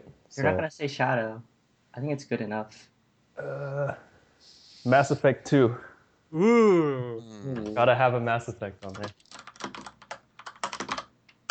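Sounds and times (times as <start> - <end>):
speech: 0.3 - 9.2
typing on a computer keyboard: 8.8 - 11.4.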